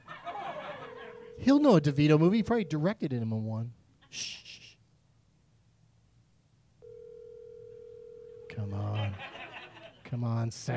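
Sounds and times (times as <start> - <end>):
laughter: 0.0 - 1.9, 8.7 - 10.1
low hum: 0.0 - 10.7
steady electronic phone ringing tone: 0.6 - 2.9, 6.8 - 8.8
speech: 1.4 - 4.4, 10.1 - 10.7.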